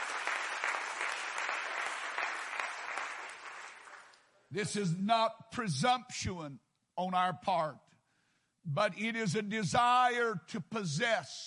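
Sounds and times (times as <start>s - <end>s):
congregation clapping hands: 0.0s - 4.3s
speech: 4.5s - 7.8s, 8.6s - 11.4s.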